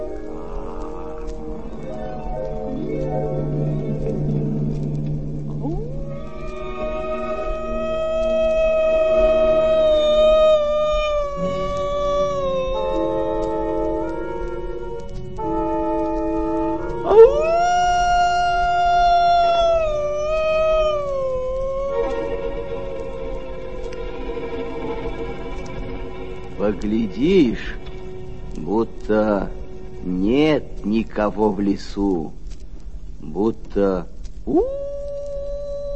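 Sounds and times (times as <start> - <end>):
grey wolf howling in a snowy forest: 0.0 - 25.0, 34.4 - 35.9
speech: 26.7 - 27.9, 28.7 - 32.4, 33.4 - 34.8.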